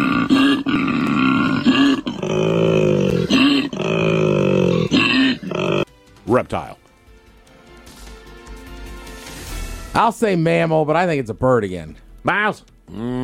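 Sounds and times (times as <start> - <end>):
Koala bellowing: 0.0 - 5.9
Koala harsh grunts: 0.0 - 5.9, 12.9 - 13.2
speech: 6.3 - 6.8, 10.0 - 13.2.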